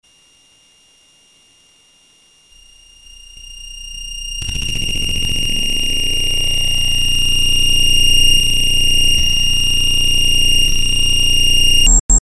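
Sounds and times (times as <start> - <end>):
ringing chopper distortion swells: 2.6 - 11.9
feedback static: 2.6 - 12.2.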